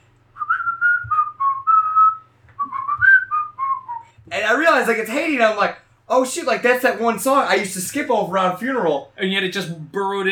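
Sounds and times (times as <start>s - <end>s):
faint low hum: 0.0s - 10.2s
person whistling a tune: 0.4s - 4.2s
speech: 4.8s - 10.2s.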